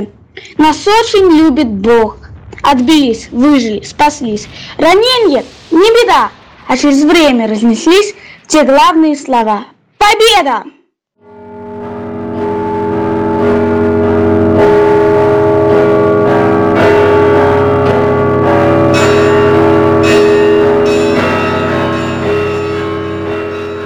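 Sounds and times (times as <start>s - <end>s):
speech: 0.0s - 10.8s
church bells ringing: 11.3s - 23.8s.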